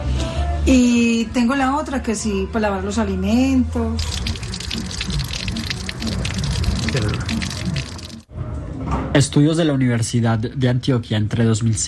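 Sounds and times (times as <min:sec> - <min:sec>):
speech: 0:00.7 - 0:04.9, 0:09.2 - 0:11.8
tap water pouring into a storage container: 0:04.0 - 0:08.3.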